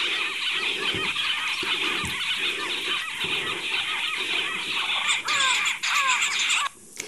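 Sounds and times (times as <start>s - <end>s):
southern pied babblers calling harshly in South Africa: 0.0s - 6.7s.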